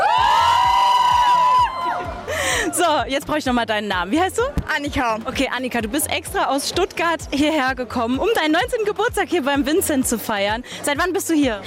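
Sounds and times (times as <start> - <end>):
front-row crowd screaming and cheering at an outdoor concert on a sunny square: 0.0 - 2.8
speech: 2.9 - 11.6.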